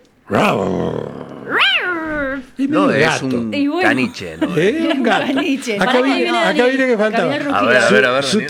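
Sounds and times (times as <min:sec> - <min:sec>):
person imitating a tiger roar with their voice: 0:00.3 - 0:02.5, 0:03.8 - 0:04.8
speech: 0:00.3 - 0:08.4
laughter: 0:02.8 - 0:08.4.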